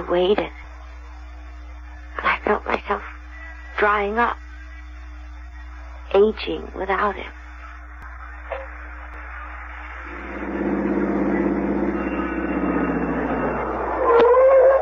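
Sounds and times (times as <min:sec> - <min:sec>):
speech: 0:00.0 - 0:00.6, 0:03.8 - 0:04.4, 0:06.1 - 0:07.4
brief higher whine: 0:09.6 - 0:14.7
car engine turning over and running: 0:10.0 - 0:14.0.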